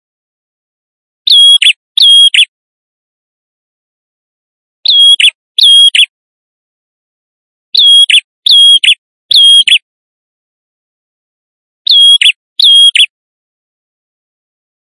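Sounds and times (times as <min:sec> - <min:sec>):
male prinia chirping song: 0:01.2 - 0:02.5, 0:04.8 - 0:06.1, 0:07.7 - 0:09.9, 0:11.9 - 0:13.2.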